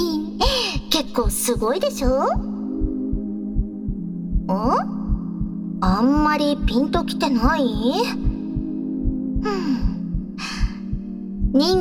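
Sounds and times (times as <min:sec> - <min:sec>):
heartbeat thumping: 0:00.0 - 0:11.7
speech: 0:01.1 - 0:02.5, 0:04.5 - 0:05.0, 0:05.8 - 0:08.3, 0:11.5 - 0:11.7.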